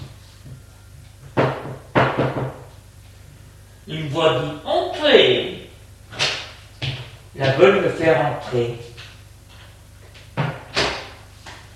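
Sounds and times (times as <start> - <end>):
faint low hum: 0.0 - 11.7
maid giving heavy knocks on a double door: 1.3 - 2.7
speech: 2.2 - 2.6, 3.9 - 5.5, 7.4 - 8.9.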